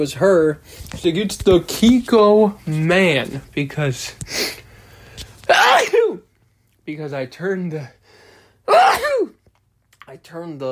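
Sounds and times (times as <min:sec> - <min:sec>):
speech: 0:00.0 - 0:04.6, 0:06.9 - 0:08.0, 0:08.7 - 0:09.4, 0:10.1 - 0:10.6
person sneezing from temperature changes outside: 0:05.4 - 0:06.2, 0:08.7 - 0:09.4.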